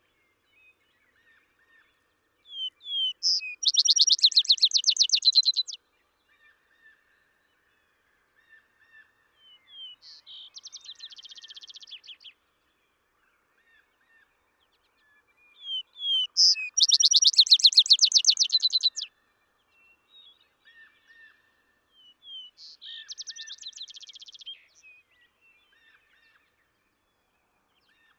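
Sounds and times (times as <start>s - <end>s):
Vesper sparrow songs of slurred whistles and a fast bright trill: 2.4s - 5.8s, 9.4s - 12.4s, 15.1s - 19.1s, 19.7s - 26.4s.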